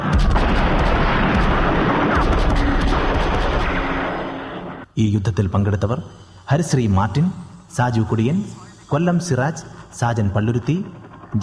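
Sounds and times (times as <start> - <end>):
loud explosion in a war scene: 0.0 - 4.8
speech: 5.0 - 11.4.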